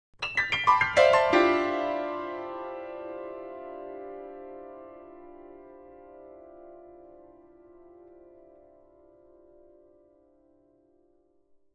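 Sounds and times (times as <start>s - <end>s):
grand piano descending chords: 0.2s - 9.0s.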